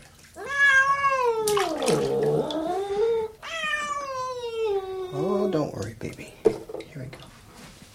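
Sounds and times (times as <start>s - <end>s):
faint splashing water: 0.0s - 2.8s
cat yowling while being bathed in water: 0.4s - 5.5s.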